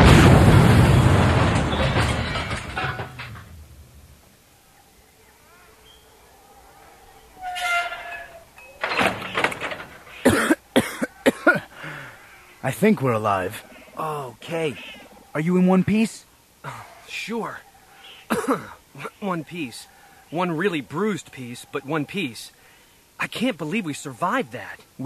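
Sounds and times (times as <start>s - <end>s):
torpedo striking a spaceship's shields with a loud roaring blast: 0.0s - 2.8s
rattling clanking noise: 0.0s - 4.3s, 7.4s - 10.5s
speech: 12.7s - 17.7s, 18.3s - 22.6s, 23.2s - 25.0s.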